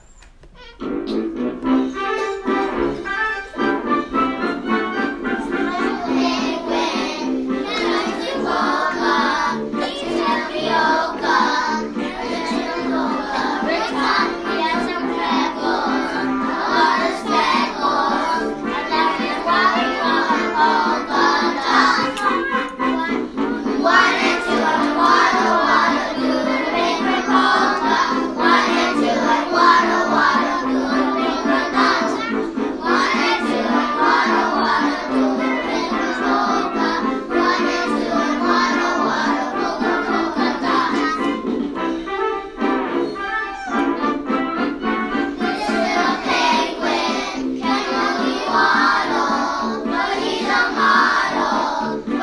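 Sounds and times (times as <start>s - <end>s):
polka music: 0.5s - 52.2s.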